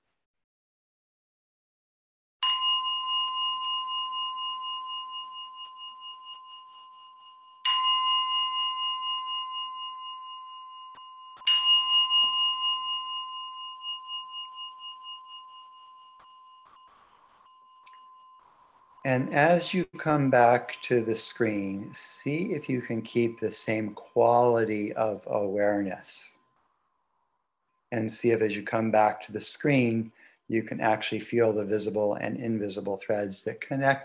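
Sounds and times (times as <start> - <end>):
bell ringing: 2.4 - 26.6
speech: 19.0 - 26.4, 27.9 - 34.0.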